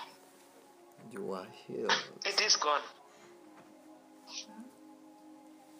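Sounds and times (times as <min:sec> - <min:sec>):
speech: 0:01.7 - 0:03.0
heavy breathing in and out: 0:03.0 - 0:03.6.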